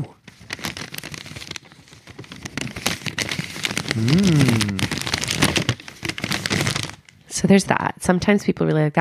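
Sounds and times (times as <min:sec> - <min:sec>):
paper being crinkled: 0:00.2 - 0:07.2
person humming: 0:03.9 - 0:05.0
speech: 0:04.0 - 0:04.5, 0:07.4 - 0:08.9.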